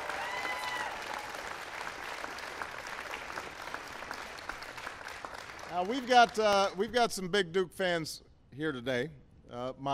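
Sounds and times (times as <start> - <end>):
audience applauding at a celebration: 0.0 - 6.8
speech: 5.8 - 9.9.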